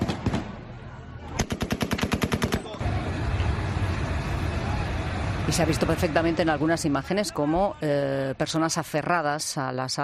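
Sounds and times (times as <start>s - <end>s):
noisy crowd murmuring and shouting: 0.4s - 1.6s, 2.6s - 8.7s
rapid burst of gunshots fired to disperse a crowd: 1.4s - 2.8s
speech: 5.5s - 10.0s.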